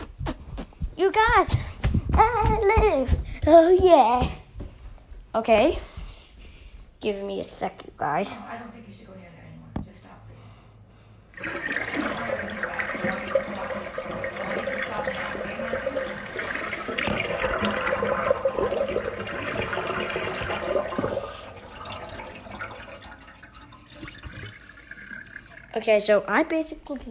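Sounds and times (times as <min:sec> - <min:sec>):
speech: 0:01.0 - 0:04.4, 0:05.3 - 0:05.9, 0:07.0 - 0:09.1, 0:25.8 - 0:27.0
water draining: 0:11.3 - 0:26.4.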